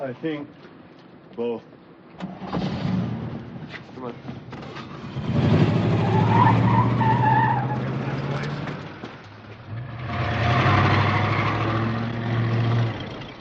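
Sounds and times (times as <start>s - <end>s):
speech: 0.0s - 0.7s, 1.4s - 2.6s, 3.7s - 4.5s
car engine roaring: 4.5s - 13.3s
car tires squealing and skidding: 4.6s - 13.3s.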